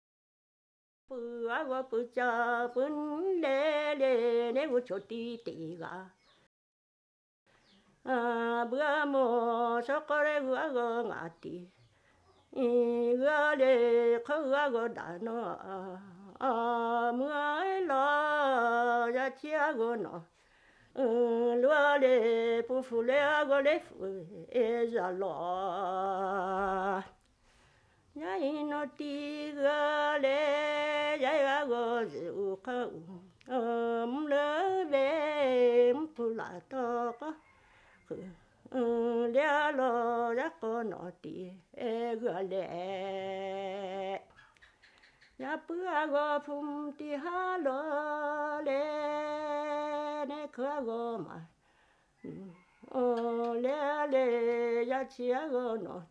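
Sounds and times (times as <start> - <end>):
woman singing an unaccompanied Black Lahu song: 1.1 - 6.4, 7.6 - 27.3, 28.1 - 51.6, 52.2 - 56.1.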